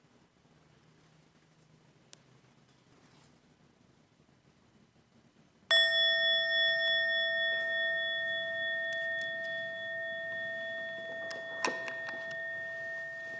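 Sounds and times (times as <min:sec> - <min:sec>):
faint room noise: 0:00.0 - 0:13.3
single bell struck and ringing: 0:05.7 - 0:13.3.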